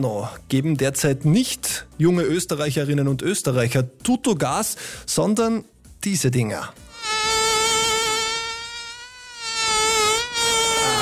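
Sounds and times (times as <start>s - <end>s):
speech: 0.0s - 6.9s
mosquito buzzing: 6.8s - 11.0s.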